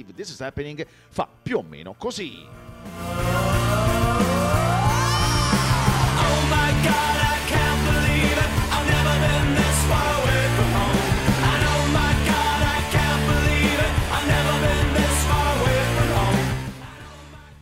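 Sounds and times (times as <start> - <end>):
speech: 0.0 - 3.3, 6.8 - 7.2
upbeat theme jingle with driving beat: 2.4 - 17.1
person shouting an exclamation: 4.2 - 6.2.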